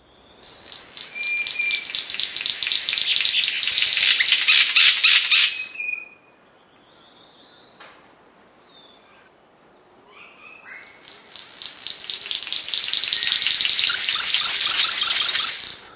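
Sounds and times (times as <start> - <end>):
King of Saxony bird-of-paradise buzzing snapping call: 0.8 - 5.5, 11.4 - 15.8.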